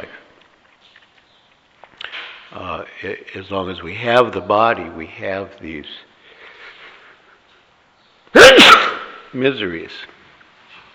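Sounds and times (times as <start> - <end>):
speech: 2.6 - 6.1, 9.3 - 10.2
sneeze: 8.3 - 9.3.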